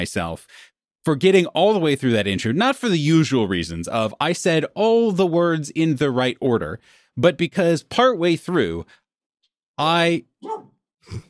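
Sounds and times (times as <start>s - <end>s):
speech: 0.0s - 9.0s, 9.8s - 11.2s
dog barking indoors: 10.4s - 10.7s.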